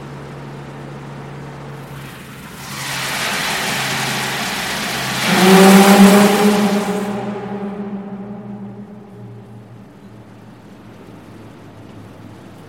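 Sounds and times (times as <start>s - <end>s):
reversible hydroelectric turbine unit running at maximum power, driven by water: 1.8s - 11.2s.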